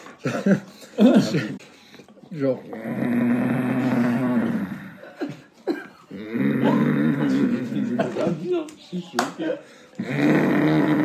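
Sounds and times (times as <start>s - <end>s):
speech: 0.2s - 3.5s, 8.5s - 11.0s
voice imitating a father's loud snoring at night in Bamako: 2.8s - 5.0s, 6.1s - 8.0s, 10.0s - 11.0s.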